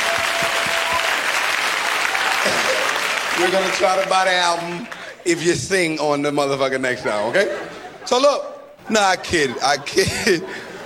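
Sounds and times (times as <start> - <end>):
crowd applauding: 0.0 - 5.2
laughter: 2.4 - 3.7, 6.9 - 10.8
speech: 3.4 - 10.7.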